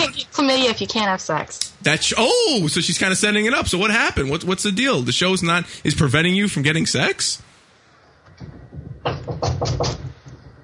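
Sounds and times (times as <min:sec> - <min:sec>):
speech: 0:00.4 - 0:07.5
firm knocking on a door: 0:08.3 - 0:10.6.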